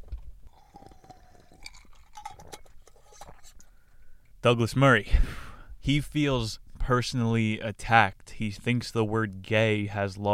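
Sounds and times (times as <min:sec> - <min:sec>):
swallowing noises: 0:00.0 - 0:03.6
person sipping a drink: 0:00.0 - 0:04.2
speech: 0:04.4 - 0:10.3.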